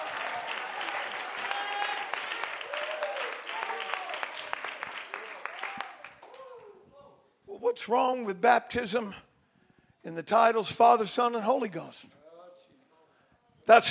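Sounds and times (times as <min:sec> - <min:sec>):
congregation clapping hands in applause: 0:00.0 - 0:06.9
speech: 0:07.7 - 0:09.3, 0:10.0 - 0:12.2, 0:13.7 - 0:13.8.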